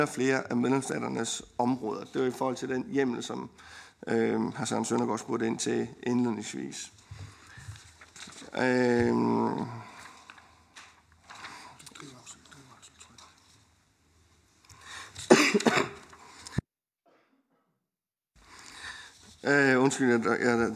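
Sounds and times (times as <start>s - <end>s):
speech: 0.0s - 7.0s, 8.5s - 9.9s, 19.4s - 20.7s
murmured voice sounds: 8.4s - 10.1s
man coughing with harsh rasping bursts: 15.2s - 16.1s.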